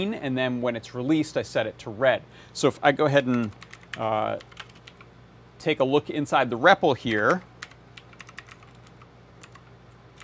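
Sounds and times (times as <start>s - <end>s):
speech: 0.0s - 4.6s, 5.6s - 7.5s
soft steady hum: 0.0s - 10.2s
keys pressed on a computer keyboard: 3.3s - 5.1s, 7.1s - 10.2s.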